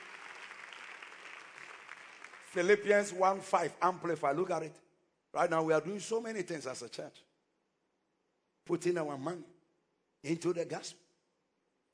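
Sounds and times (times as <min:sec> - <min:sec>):
audience clapping: 0:00.0 - 0:03.5
speech: 0:02.5 - 0:07.3, 0:08.7 - 0:09.6, 0:10.2 - 0:11.0.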